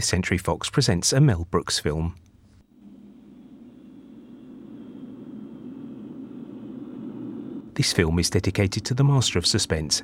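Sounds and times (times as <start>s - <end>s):
speech: 0.0s - 2.3s, 7.8s - 10.0s
passenger jet engine drone flying high above the clouds: 2.6s - 10.0s.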